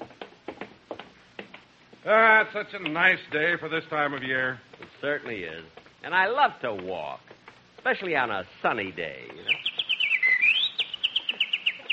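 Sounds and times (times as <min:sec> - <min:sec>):
speech: 0:02.0 - 0:09.6
bird chirping on a lawn: 0:09.3 - 0:11.9.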